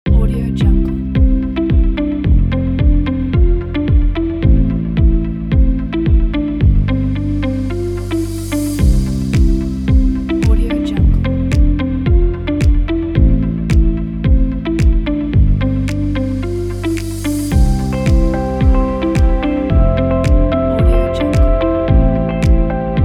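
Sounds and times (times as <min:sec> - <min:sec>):
upbeat corporate electronic music: 0:00.1 - 0:23.0.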